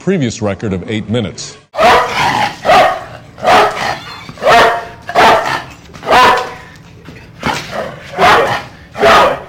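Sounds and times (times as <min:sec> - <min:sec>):
speech: 0:00.0 - 0:02.2
dog barking: 0:01.8 - 0:06.7, 0:07.4 - 0:09.4.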